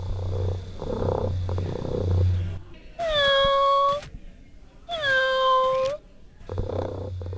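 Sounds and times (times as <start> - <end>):
low hum and murmur of a room: 0.0 - 7.3
robotic toy cat electronic meows: 3.0 - 4.1, 4.9 - 6.0.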